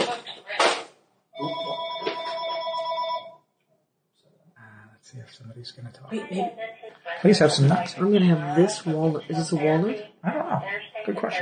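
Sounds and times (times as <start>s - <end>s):
electronic telephone ringing: 1.4s - 3.4s
speech: 5.2s - 11.3s.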